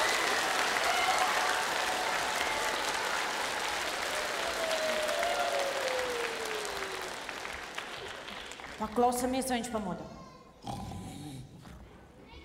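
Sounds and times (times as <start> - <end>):
large group of children applauding at a performance: 0.0 - 9.0
speech: 8.8 - 10.2.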